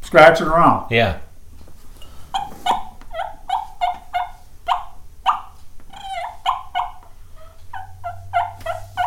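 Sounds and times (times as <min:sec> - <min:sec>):
speech: 0:00.1 - 0:01.2
wild turkey tom gobbling: 0:02.3 - 0:09.0.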